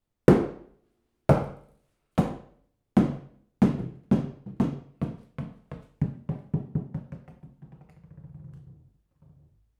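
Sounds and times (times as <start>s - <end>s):
solid rubber ball bouncing: 0.3s - 0.7s, 1.3s - 1.6s, 2.2s - 8.7s.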